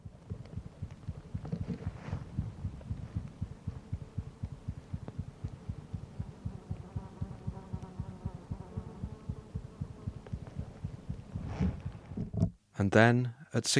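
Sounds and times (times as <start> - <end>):
heartbeat of a sleeping osprey chick: 0.0 - 11.8
faint hiss: 0.0 - 13.7
soft rustles: 0.2 - 5.8, 10.2 - 12.2
speech: 12.8 - 13.7.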